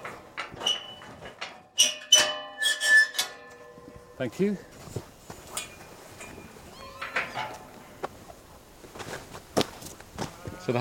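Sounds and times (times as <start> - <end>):
field gate hinge squeaking and creaking: 1.8 - 3.8, 5.6 - 7.7
speech: 4.2 - 5.1, 10.7 - 10.8.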